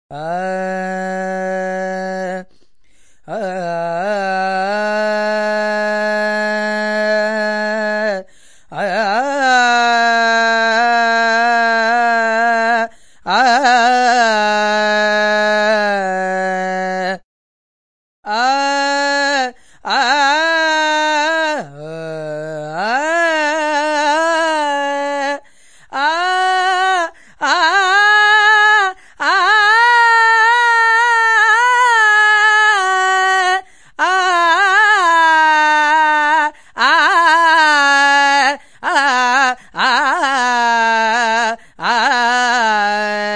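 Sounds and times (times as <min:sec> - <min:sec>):
person singing Indian music: 0:00.1 - 0:02.6, 0:03.2 - 0:17.2, 0:18.3 - 0:43.3.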